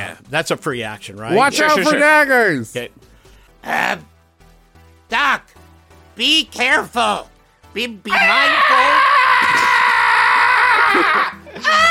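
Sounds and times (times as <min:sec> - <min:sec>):
speech: 0:00.3 - 0:04.1, 0:05.1 - 0:05.6, 0:06.2 - 0:09.0, 0:11.0 - 0:11.8
man screaming in panic: 0:08.1 - 0:11.8.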